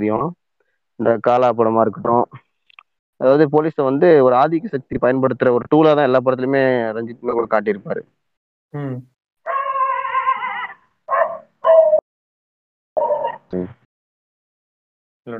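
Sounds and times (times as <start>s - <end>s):
speech: 0.0s - 0.4s, 1.0s - 2.5s, 3.2s - 9.1s, 13.5s - 13.8s
dog barking: 9.5s - 12.0s.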